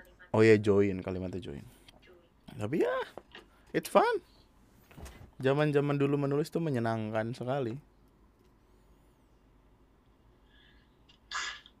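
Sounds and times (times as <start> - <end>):
speech: 0.3 - 1.8, 2.6 - 4.4, 5.4 - 7.9
faint intake of breath: 10.4 - 11.1
person sneezing: 11.3 - 11.7.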